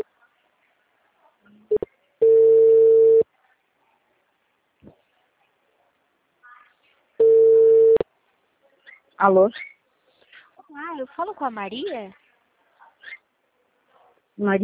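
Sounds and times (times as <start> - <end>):
telephone ringback tone of an outgoing call: 2.2 - 3.2, 7.2 - 8.0
speech: 9.2 - 9.7, 11.0 - 12.2, 14.4 - 14.6.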